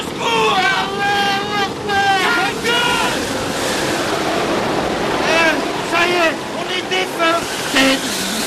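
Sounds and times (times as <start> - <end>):
people shouting: 0.0 - 3.4
huge wave crashing over a boat: 1.7 - 8.4.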